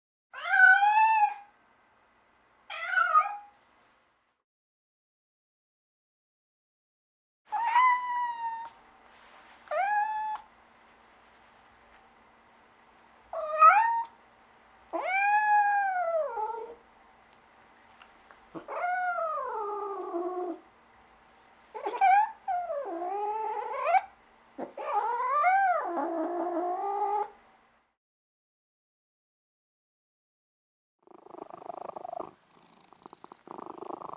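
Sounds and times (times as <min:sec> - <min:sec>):
domestic cat meowing: 0:00.4 - 0:01.5, 0:02.7 - 0:03.5, 0:07.5 - 0:08.8, 0:09.7 - 0:10.5, 0:13.4 - 0:14.2, 0:14.9 - 0:16.8, 0:18.6 - 0:20.6, 0:21.7 - 0:27.4.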